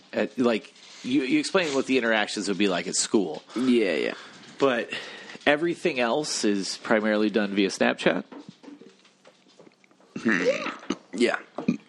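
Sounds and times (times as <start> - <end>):
speech: 0.2 - 8.4, 10.2 - 11.5
loud croaky burp: 10.2 - 11.8.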